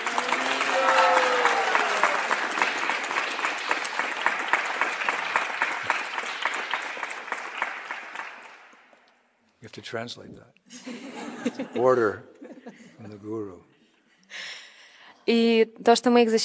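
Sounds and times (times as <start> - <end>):
cheers and whoops: 0.0 - 2.6
large audience applauding: 0.0 - 9.0
speech: 9.8 - 12.4, 13.0 - 13.7, 15.3 - 16.4
laughter: 10.7 - 13.5.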